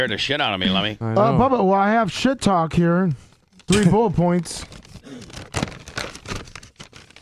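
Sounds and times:
speech: 0:00.0 - 0:05.2
paper crinkling while being smoothed out: 0:03.5 - 0:07.2.

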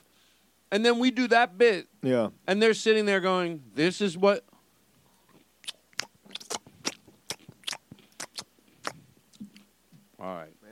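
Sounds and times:
speech: 0:00.7 - 0:04.5
crunchy chewing: 0:05.0 - 0:09.7.

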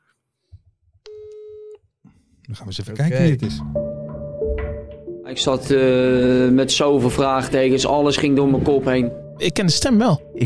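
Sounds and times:
electronic telephone tone: 0:01.1 - 0:01.8
speech: 0:02.5 - 0:04.0, 0:05.3 - 0:10.4.

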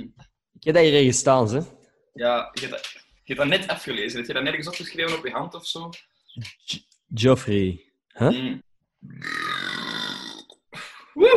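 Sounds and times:
speech: 0:00.6 - 0:09.6
long loud croaky burp: 0:09.1 - 0:10.5.

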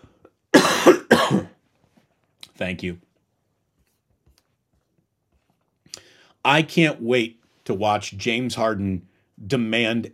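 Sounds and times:
loud harsh raspy coughs: 0:00.5 - 0:01.6
speech: 0:02.6 - 0:03.1, 0:06.5 - 0:10.1.

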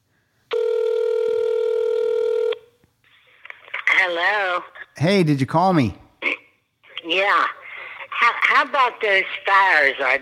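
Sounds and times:
landline telephone dialing tone: 0:00.5 - 0:02.6
speech: 0:04.1 - 0:06.0, 0:07.1 - 0:07.6, 0:08.2 - 0:10.2.

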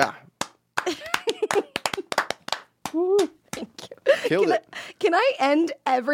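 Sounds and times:
speech: 0:00.0 - 0:00.2, 0:04.3 - 0:06.1
small group of people clapping: 0:00.4 - 0:03.9.

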